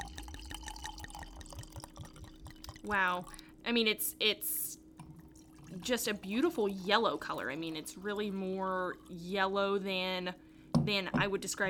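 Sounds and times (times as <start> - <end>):
wine from a screw-top bottle poured into glasses: 0.0 - 3.5, 5.0 - 9.4
speech: 2.8 - 4.7, 5.7 - 11.6.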